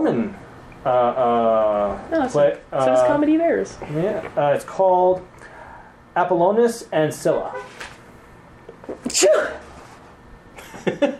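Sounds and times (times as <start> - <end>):
speech: 0.0 - 5.5, 6.2 - 7.8, 8.9 - 9.7
forceful sneeze: 9.0 - 9.6.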